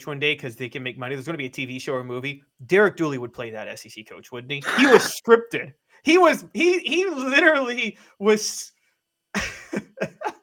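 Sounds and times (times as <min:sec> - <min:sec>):
speech: 0:00.0 - 0:10.4
laughter: 0:04.6 - 0:05.2, 0:09.4 - 0:10.4
person with COVID coughing: 0:04.6 - 0:05.2.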